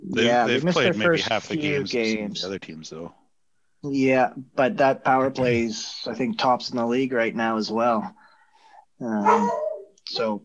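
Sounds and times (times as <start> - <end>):
speech: 0.1 - 3.2, 3.8 - 8.2, 9.0 - 10.4
dog barking: 9.2 - 9.9
faint dog yelp: 9.2 - 10.4.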